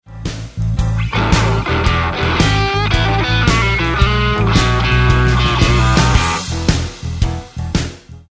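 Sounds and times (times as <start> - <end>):
roadhouse guitar lick: 1.0 - 6.7.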